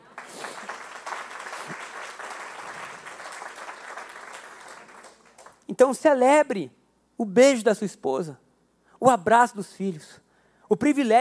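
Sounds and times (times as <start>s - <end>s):
large crowd applauding: 0.0s - 5.6s
speech: 5.8s - 8.4s, 9.0s - 11.1s.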